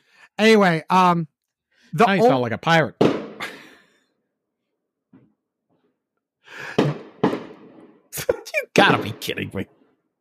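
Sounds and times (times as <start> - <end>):
speech: 0.3 - 1.3, 1.9 - 3.0, 8.2 - 9.8
fireworks bangs on the street: 6.8 - 7.9.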